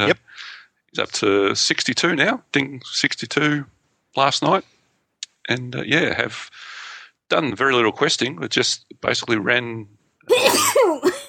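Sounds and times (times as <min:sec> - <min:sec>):
speech: 0:00.0 - 0:00.2, 0:01.0 - 0:04.7, 0:05.5 - 0:11.0
person sneezing: 0:10.3 - 0:11.2.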